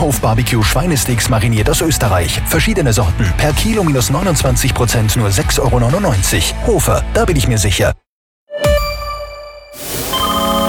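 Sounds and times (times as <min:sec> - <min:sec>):
speech: 0:00.0 - 0:08.0
electronic phone ringtone for a call from an unknown number: 0:08.6 - 0:10.6.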